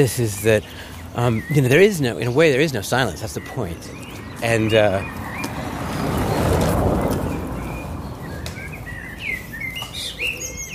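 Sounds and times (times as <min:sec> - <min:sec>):
speech: 0:00.0 - 0:05.2
birds chirping and singing among trees in Berlin: 0:00.0 - 0:10.7
steady low city hum: 0:00.0 - 0:10.7.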